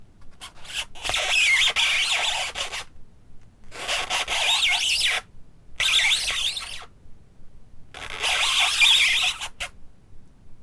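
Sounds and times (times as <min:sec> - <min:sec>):
rubber squeaking: 0:00.3 - 0:02.9, 0:03.7 - 0:06.9, 0:07.9 - 0:09.7.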